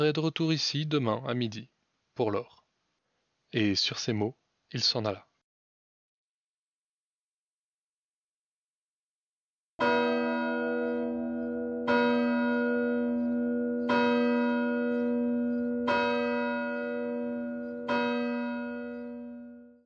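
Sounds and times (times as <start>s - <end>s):
speech: 0.0s - 2.6s, 3.5s - 5.3s
deep church bell tolling: 9.8s - 19.8s.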